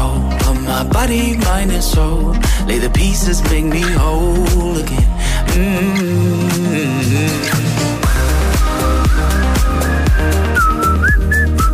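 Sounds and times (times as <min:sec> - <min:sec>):
loud steady beat-driven music track: 0:00.0 - 0:11.7
speech: 0:00.8 - 0:07.9
person whistling a wavering sustained melody: 0:08.1 - 0:11.7.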